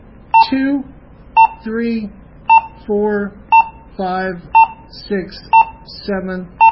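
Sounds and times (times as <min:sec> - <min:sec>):
high-pitched beeps from button presses on a radio keypad: 0:00.3 - 0:00.6, 0:01.4 - 0:01.7, 0:02.5 - 0:02.8, 0:03.5 - 0:04.9, 0:05.5 - 0:05.9
person speaking: 0:00.4 - 0:06.6.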